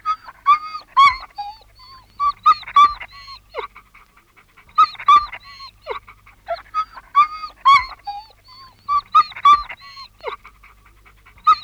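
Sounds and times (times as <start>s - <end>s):
dog yelping and whining anxiously: 0.0s - 3.8s, 4.6s - 10.5s, 11.4s - 11.6s.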